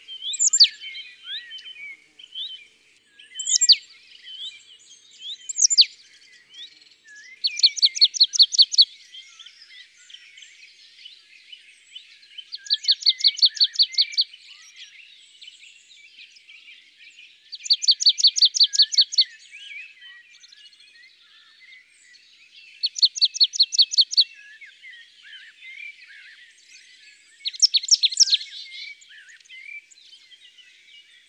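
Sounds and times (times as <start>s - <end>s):
marsh tit singing: 0.0s - 2.7s, 3.4s - 4.0s, 5.4s - 5.9s, 7.4s - 8.9s, 12.6s - 14.2s, 17.6s - 19.3s, 22.7s - 24.3s, 27.3s - 31.2s.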